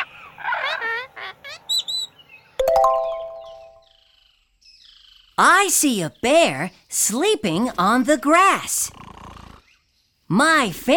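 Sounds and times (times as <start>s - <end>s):
birds singing and chirping: 0.1s - 7.6s
bright chiming ding-dong tone: 2.6s - 3.8s
speech: 5.4s - 9.0s, 10.3s - 10.9s.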